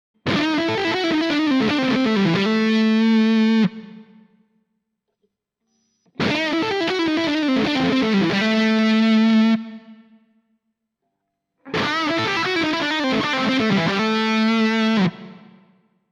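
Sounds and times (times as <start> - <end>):
lead electric guitar through Panico HB1 humbucker pickup: 0.2 - 4.3, 6.2 - 10.2, 11.6 - 15.8.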